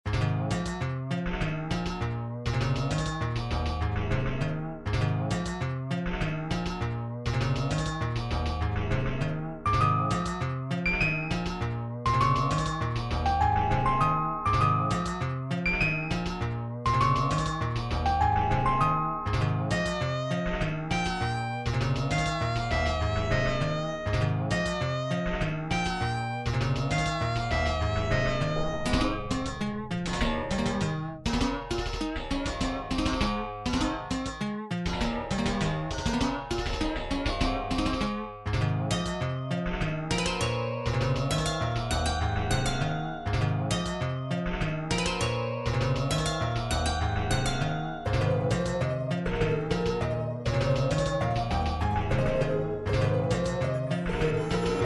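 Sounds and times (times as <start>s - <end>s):
instrumental music: 0.0s - 54.8s.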